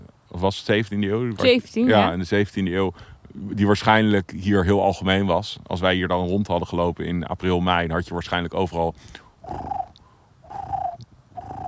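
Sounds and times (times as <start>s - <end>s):
speech: 0.4s - 9.8s
European turtle dove cooing: 8.9s - 11.6s.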